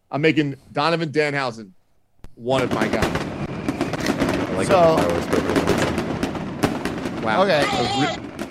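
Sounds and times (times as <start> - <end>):
speech: 0.1 - 1.8, 2.4 - 3.2, 4.6 - 6.0, 7.2 - 8.3
fireworks crackling and popping: 2.2 - 8.4.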